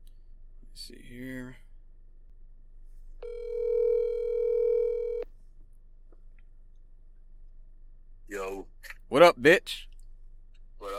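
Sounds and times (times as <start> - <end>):
quiet low hum: 0.0 - 10.9
speech: 0.8 - 1.7, 9.1 - 9.9
electronic ringback tone from an outgoing phone call: 3.2 - 5.2.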